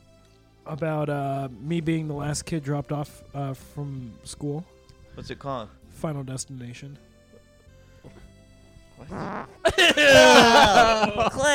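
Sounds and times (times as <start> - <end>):
speech: 0.7 - 7.1, 9.0 - 11.5
short buzzy fart into the microphone: 8.0 - 8.3, 9.0 - 9.6
people laughing: 9.6 - 11.5.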